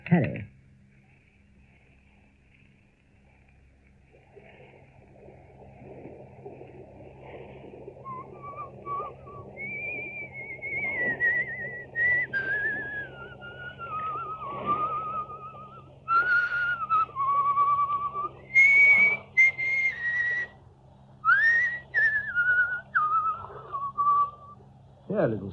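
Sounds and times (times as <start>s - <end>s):
steady low hum: 0.0s - 25.5s
speech: 0.1s - 0.5s, 25.2s - 25.5s
man whistling a slow folk-style melody: 8.0s - 20.6s, 21.2s - 24.6s.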